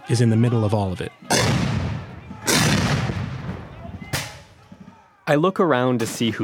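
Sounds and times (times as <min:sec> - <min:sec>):
noisy outdoor crowd murmur: 0:00.0 - 0:05.3
speech: 0:00.1 - 0:01.6, 0:05.3 - 0:06.4
gunshots or cannon blasts at a battle reenactment: 0:01.3 - 0:04.6.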